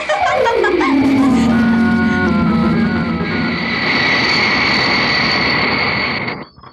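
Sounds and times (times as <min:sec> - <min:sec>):
jet airplane engine roaring in flight at night above the clouds: 0:00.1 - 0:06.3
pitched downward sweep: 0:00.2 - 0:05.1.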